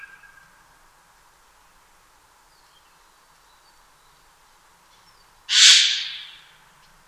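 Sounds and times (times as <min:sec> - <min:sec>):
Eurasian jay giving downslurred mewing calls: 0:05.5 - 0:06.5.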